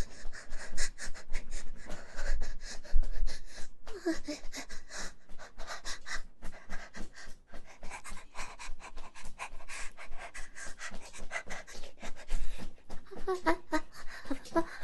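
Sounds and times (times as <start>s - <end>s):
father panting heavily: 0.0s - 14.8s.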